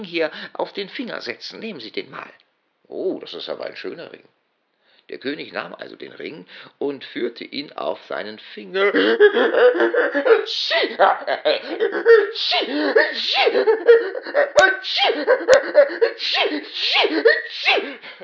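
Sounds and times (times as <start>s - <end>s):
speech: 0.0s - 4.4s, 5.1s - 18.2s
breathy chuckling: 8.8s - 16.2s
voice imitating a king sneezing: 8.8s - 18.2s.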